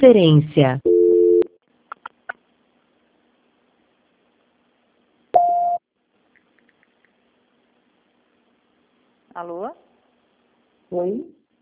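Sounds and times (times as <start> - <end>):
speech: 0.0 - 0.9, 9.4 - 9.8, 10.9 - 11.4
telephone line voicemail tones: 0.5 - 1.5.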